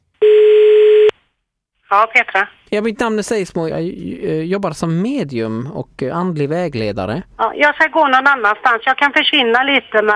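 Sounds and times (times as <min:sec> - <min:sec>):
outgoing call telephone ringing tone: 0:00.2 - 0:01.1
speech: 0:01.9 - 0:10.1.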